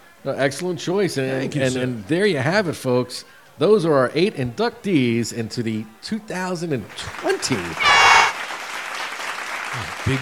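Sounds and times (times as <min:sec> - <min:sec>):
speech: 0:00.2 - 0:08.0, 0:09.8 - 0:10.2
crowd applause greeting hall of fame inductees: 0:07.0 - 0:10.2.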